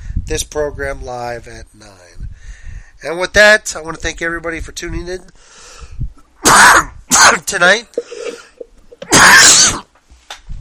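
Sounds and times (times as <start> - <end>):
speech: 0.3 - 2.3, 3.0 - 5.7, 6.5 - 8.4, 9.1 - 9.9
faint breathing: 2.2 - 3.0, 5.3 - 6.1, 8.0 - 8.6
harsh cough: 6.4 - 7.4, 9.1 - 9.8.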